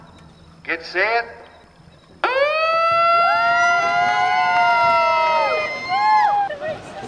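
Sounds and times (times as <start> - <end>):
speech: 0.7 - 1.4
siren signalling the start of a canoe race: 2.2 - 6.6.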